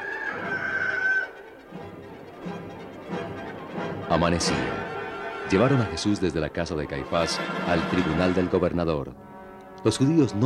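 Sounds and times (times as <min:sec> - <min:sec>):
rooster crowing: 0:00.0 - 0:01.4
speech: 0:04.1 - 0:04.9, 0:05.5 - 0:09.2, 0:09.8 - 0:10.4.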